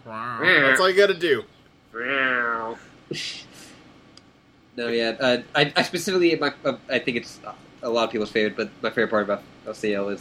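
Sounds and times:
person imitating a cat meow: 0.0 - 0.8, 2.0 - 2.8
speech: 0.1 - 3.4, 4.8 - 10.1
soft hissy breaths: 2.7 - 4.2.

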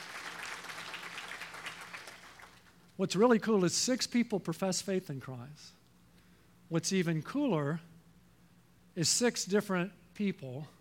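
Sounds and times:
crowd clapping in a large room: 0.0 - 2.9
speech: 3.0 - 5.8, 6.7 - 7.9, 9.0 - 10.7.

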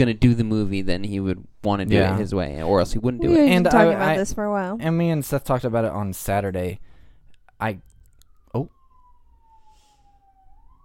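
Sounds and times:
speech: 0.0 - 6.9, 7.6 - 7.9, 8.5 - 8.8
faint police siren passing: 1.9 - 4.2, 5.8 - 10.8.

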